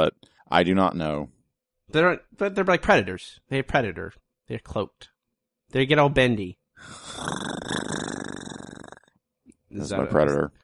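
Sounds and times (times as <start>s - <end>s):
speech: 0.0s - 5.1s, 5.7s - 7.9s, 9.7s - 10.6s
person imitating a cat's purr: 6.8s - 9.1s.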